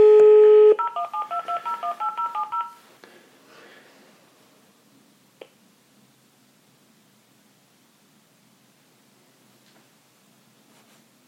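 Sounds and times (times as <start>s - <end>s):
steady telephone dial tone: 0.1s - 2.8s
touch-tone beeps dialing a number: 0.6s - 2.8s.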